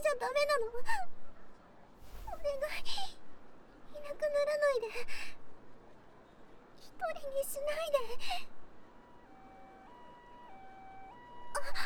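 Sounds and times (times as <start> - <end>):
speech: 0.1 - 1.2, 2.3 - 3.2, 3.9 - 5.4, 6.9 - 8.6, 11.6 - 11.8
ambulance siren alternating between two pitches: 8.7 - 11.8.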